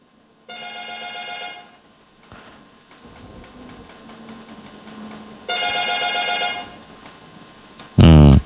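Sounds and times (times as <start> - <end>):
phone ringtone for an incoming WhatsApp call: 0.5 - 1.8, 5.5 - 6.8
faint voices: 2.2 - 8.4.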